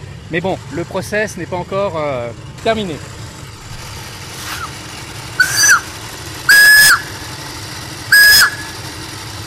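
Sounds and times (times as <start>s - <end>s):
speech: 0.3s - 3.1s
steam car whistle blasts: 5.4s - 5.9s, 6.5s - 7.2s, 8.1s - 8.8s.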